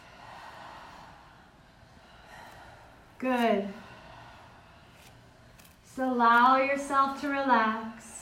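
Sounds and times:
person breathing in and out during a breathing exercise: 0:00.0 - 0:05.9
speech: 0:03.2 - 0:03.8, 0:06.0 - 0:08.1.

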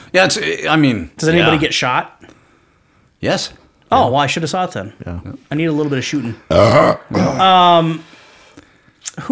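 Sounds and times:
speech: 0:00.1 - 0:02.4, 0:03.2 - 0:08.1, 0:09.0 - 0:09.3
brief breathy vocal sound: 0:06.2 - 0:08.8
loud throaty droning burp: 0:06.5 - 0:07.8.

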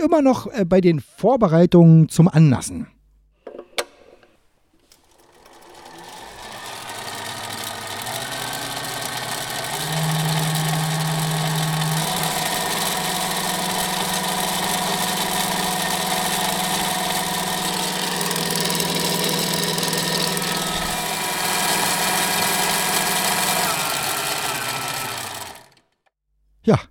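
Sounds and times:
speech: 0:00.0 - 0:03.0
electric pre-lubrication oil pump of a large diesel engine humming: 0:05.0 - 0:25.8.

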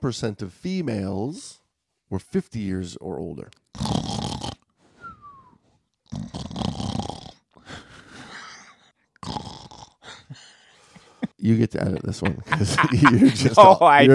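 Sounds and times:
speech: 0:00.0 - 0:04.2, 0:11.4 - 0:14.1
person imitating snoring with their voice: 0:03.8 - 0:04.6, 0:06.1 - 0:07.4, 0:09.2 - 0:10.3
laughter: 0:10.9 - 0:14.1.

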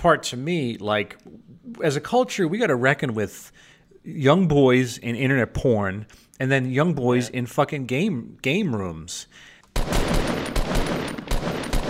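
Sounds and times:
speech: 0:00.0 - 0:10.2
grenade launcher fire and blasts in a video game: 0:09.8 - 0:11.8.

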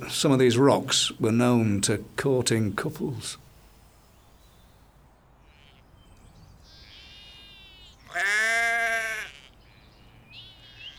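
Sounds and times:
speech: 0:00.1 - 0:03.4
sheep bleating while grazing on a hilltop plateau: 0:07.5 - 0:09.6.

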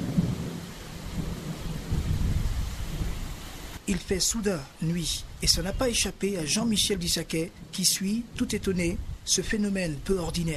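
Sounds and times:
deep continuous rumbling thunder in Yaoundé: 0:00.0 - 0:03.4
steady rain in Yaoundé: 0:00.0 - 0:10.5
speech: 0:03.9 - 0:10.5.

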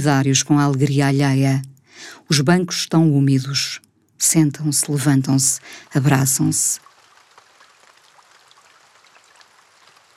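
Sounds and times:
speech: 0:00.0 - 0:06.9
steady pre-dawn rain falling: 0:05.6 - 0:10.1.

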